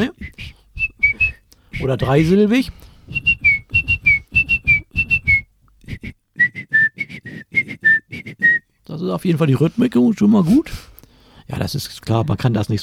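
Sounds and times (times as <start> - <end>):
person whistling an imitation of birdsong: 0.0 - 2.4, 3.1 - 8.7
speech: 1.8 - 3.3, 9.0 - 10.9, 11.5 - 12.8.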